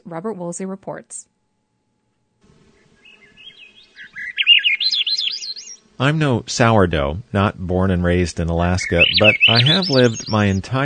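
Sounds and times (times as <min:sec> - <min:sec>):
speech: 0:00.1 - 0:01.4, 0:06.0 - 0:10.8
birds singing on an Alaskan island: 0:02.7 - 0:10.8.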